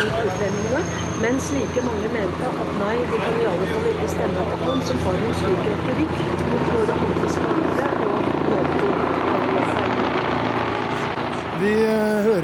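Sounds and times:
speech: 0.0s - 9.6s, 11.6s - 12.4s
helicopter rotor chopping overhead: 2.5s - 12.4s.

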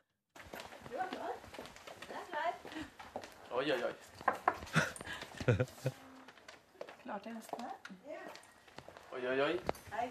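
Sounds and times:
footsteps along a hard-floored corridor: 0.4s - 10.0s
speech: 3.6s - 4.1s, 5.5s - 6.0s, 7.1s - 8.4s, 9.2s - 10.0s
knocking on a door: 4.2s - 4.7s
laughter: 4.7s - 6.1s.

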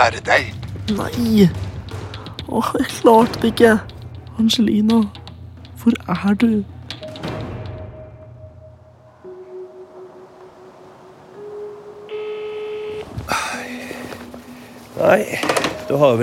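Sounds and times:
speech: 0.0s - 1.8s, 2.5s - 5.2s, 5.8s - 6.7s, 15.1s - 16.2s
electronic alarm with sustained pitch-shifting tones: 7.1s - 13.5s.

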